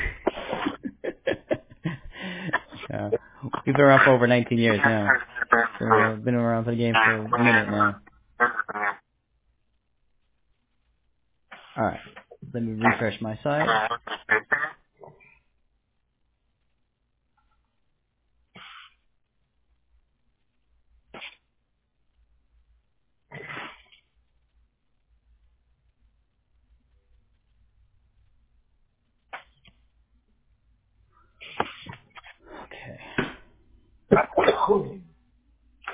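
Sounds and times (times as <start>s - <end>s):
laughter: 0.0s - 6.2s
honking snorting outbursts: 3.6s - 9.0s, 13.6s - 14.9s
speech: 3.7s - 8.0s, 12.6s - 14.1s
sneeze: 11.5s - 12.2s, 18.6s - 19.0s, 21.1s - 21.5s, 23.3s - 24.0s, 31.4s - 32.1s, 34.1s - 35.0s.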